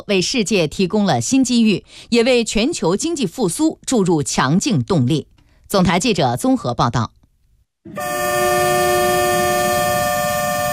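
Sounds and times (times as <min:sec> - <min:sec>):
speech: 0:00.0 - 0:07.2, 0:07.8 - 0:08.2
China-Europe freight train horn at Yiwu West railway station in Zhejiang: 0:07.9 - 0:10.7.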